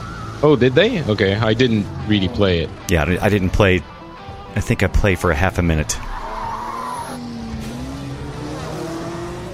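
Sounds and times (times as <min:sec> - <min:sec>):
engines roaring: 0:00.0 - 0:09.5
speech: 0:00.4 - 0:03.9, 0:04.5 - 0:06.1
race car tires squealing and skidding: 0:06.0 - 0:09.2.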